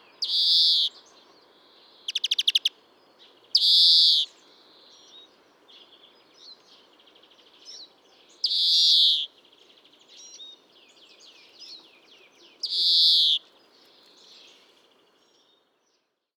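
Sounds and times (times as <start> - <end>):
European greenfinch calling: 0.2 - 0.9, 2.1 - 2.7, 3.5 - 4.3, 8.4 - 9.3, 12.6 - 13.4.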